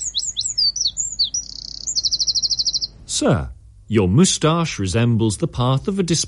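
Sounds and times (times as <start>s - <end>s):
wren singing: 0.0s - 3.0s
speech: 3.2s - 6.2s.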